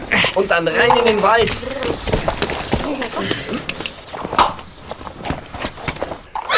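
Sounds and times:
horse hooves shuffling and clopping as horses are tied together: 0.0s - 6.5s
speech: 0.3s - 2.2s, 2.9s - 3.7s
horse whinnying: 6.4s - 6.5s.

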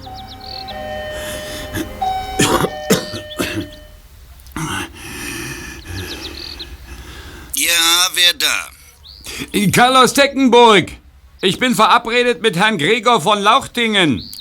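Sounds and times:
doorbell at a villa ringing with electronic tones: 0.0s - 4.0s
faint bird chirps: 0.0s - 14.4s
throat clearing: 1.7s - 3.8s, 4.5s - 5.0s
speech: 9.6s - 14.3s.

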